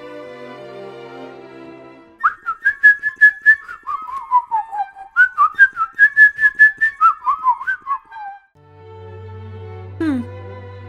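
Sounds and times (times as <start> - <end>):
person whistling a bird-like melody imitating birdsong: 2.2 - 8.5.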